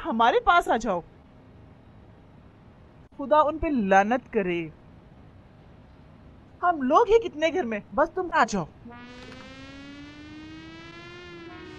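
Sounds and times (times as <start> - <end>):
speech: 0.0 - 1.1, 3.2 - 4.8, 6.6 - 9.2
siren wailing with climbing pitch: 8.8 - 11.7.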